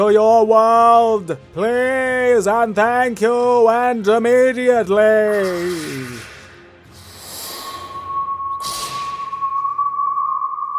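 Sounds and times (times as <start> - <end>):
speech: 0.0 - 6.3
thin distant whistle inside the shelter of a volcano: 7.6 - 10.7.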